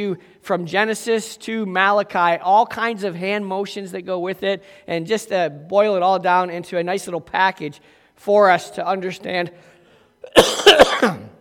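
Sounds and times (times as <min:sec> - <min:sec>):
speech: 0:00.0 - 0:11.2
harsh coughing: 0:10.2 - 0:11.4.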